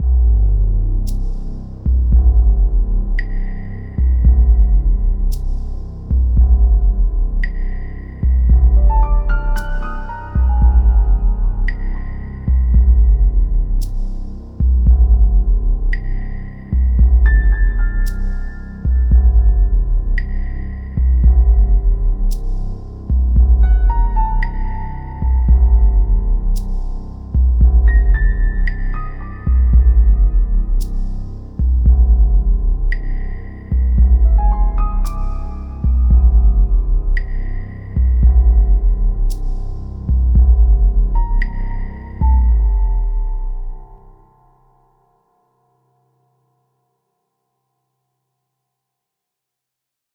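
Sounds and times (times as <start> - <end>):
horror background sound: 0.0 - 44.8.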